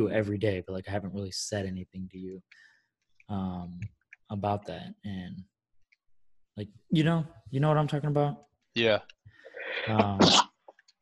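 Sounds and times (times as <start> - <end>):
speech: 0.0 - 2.7, 3.3 - 5.5, 6.6 - 9.2, 9.8 - 10.5
sneeze: 9.9 - 10.4.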